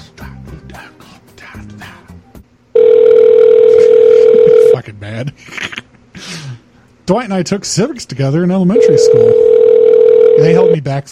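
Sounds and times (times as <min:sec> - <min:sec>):
fax machine transmitting over a phone line: 0:02.8 - 0:04.8, 0:08.7 - 0:10.8
speech: 0:05.1 - 0:05.6, 0:07.1 - 0:09.6, 0:10.4 - 0:11.0.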